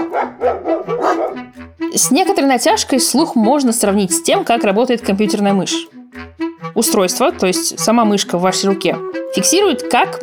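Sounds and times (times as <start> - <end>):
dog barking: 0.0 - 1.6
speech: 0.4 - 0.9, 2.0 - 5.9, 6.8 - 10.2.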